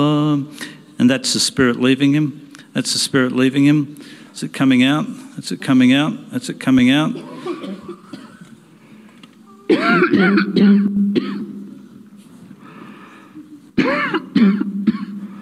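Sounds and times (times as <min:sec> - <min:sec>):
speech: 0:00.0 - 0:07.7, 0:09.7 - 0:11.3
person coughing harshly: 0:07.1 - 0:08.5, 0:09.7 - 0:11.6, 0:13.8 - 0:15.4
throat clearing: 0:07.2 - 0:08.6, 0:09.7 - 0:11.5.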